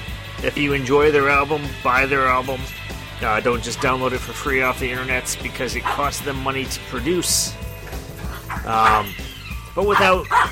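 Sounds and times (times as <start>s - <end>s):
speech: 0.4s - 7.6s, 8.6s - 9.2s, 9.8s - 10.4s
dog barking and yipping: 5.8s - 6.2s, 8.2s - 10.4s.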